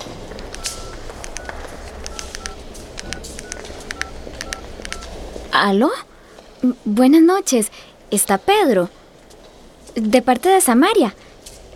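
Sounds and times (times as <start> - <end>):
electronic phone keypad beeps as a number is dialed: 0.0 - 5.2
low rumbling background: 0.0 - 7.0
speech: 5.6 - 9.0, 10.0 - 11.2.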